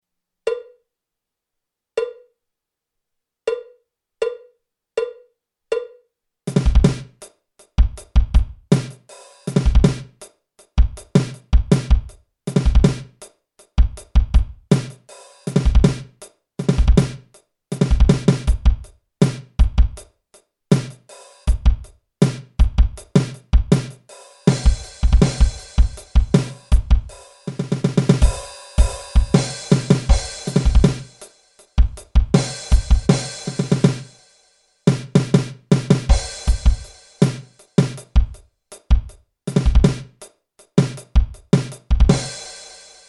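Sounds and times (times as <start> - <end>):
jazz fusion drum kit solo: 6.5 - 20.1, 20.7 - 43.0.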